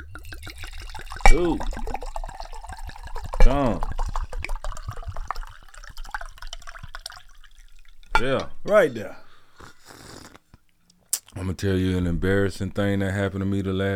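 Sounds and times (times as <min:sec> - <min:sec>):
wine pouring into a glass: 0:00.0 - 0:09.9
speech: 0:01.3 - 0:02.0, 0:03.5 - 0:03.9, 0:08.2 - 0:09.2, 0:11.4 - 0:13.9.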